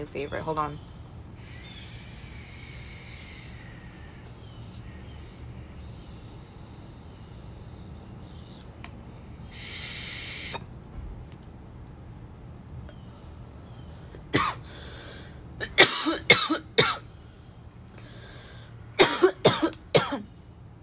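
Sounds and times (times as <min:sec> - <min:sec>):
speech: 0:00.0 - 0:01.6
person taking a hissing hit of smoke: 0:01.3 - 0:10.7, 0:14.6 - 0:15.4, 0:18.0 - 0:18.8
person coughing harshly after a hit of smoke: 0:14.3 - 0:14.6, 0:15.6 - 0:17.0, 0:19.0 - 0:20.2.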